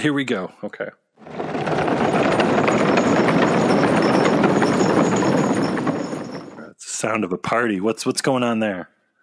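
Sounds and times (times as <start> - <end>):
speech: 0.0 - 1.8, 7.0 - 9.0
skateboard wheels ridden over cement in high school hallways: 1.2 - 6.7.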